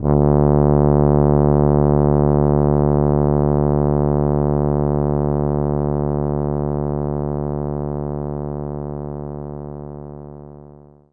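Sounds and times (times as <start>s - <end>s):
tuba playing note D1: 0.0s - 7.7s.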